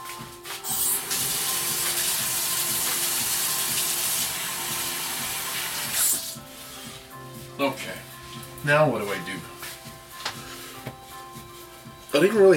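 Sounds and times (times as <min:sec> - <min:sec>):
water running from a tap over oily hands being washed: 0:00.6 - 0:06.4
speech: 0:07.6 - 0:09.5, 0:12.1 - 0:12.5.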